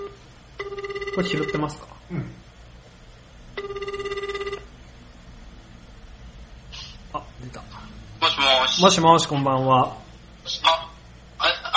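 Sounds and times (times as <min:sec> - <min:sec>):
trilling telephone ring during an outgoing call: 0:00.0 - 0:01.8, 0:03.6 - 0:04.7
quiet hiss: 0:00.0 - 0:11.7
speech: 0:01.2 - 0:02.5, 0:08.8 - 0:10.0.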